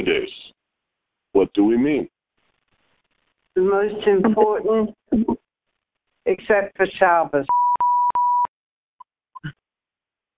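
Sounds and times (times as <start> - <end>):
speech: 1.4 - 2.1, 3.6 - 5.4, 6.3 - 7.6
phone's electronic beep as a phone is muted: 7.5 - 8.5.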